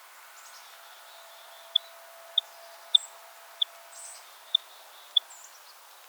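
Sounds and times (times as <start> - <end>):
purple finch Haemorhous purpureus purpureus calling: 0.5 - 5.3.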